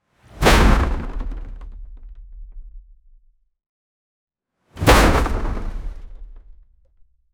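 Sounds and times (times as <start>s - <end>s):
wooden object thrown fast: 0.3s - 2.8s, 4.8s - 6.6s.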